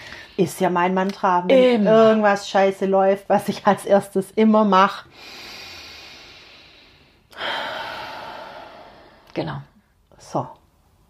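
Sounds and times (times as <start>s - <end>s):
speech: 0.4s - 5.4s, 10.3s - 10.6s
deep breathing: 5.1s - 9.3s.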